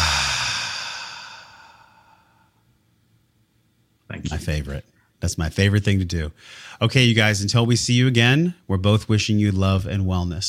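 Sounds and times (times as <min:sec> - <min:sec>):
deep breathy exhale through the mouth: 0:00.0 - 0:02.6
speech: 0:04.1 - 0:10.4.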